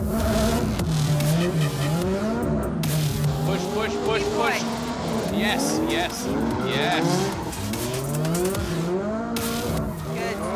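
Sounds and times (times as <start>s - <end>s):
drifting car engine revving: 0.0s - 10.5s
drifting car tyres squealing and skidding: 3.2s - 8.9s
speech: 6.0s - 7.4s.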